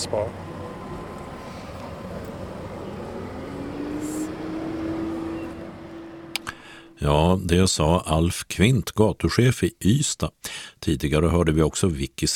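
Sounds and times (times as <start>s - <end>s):
speech: 0.0s - 0.5s, 7.0s - 12.3s
continuous traffic rumble: 0.0s - 9.0s
car speeding past on a temporary pedestrian street: 0.2s - 7.0s.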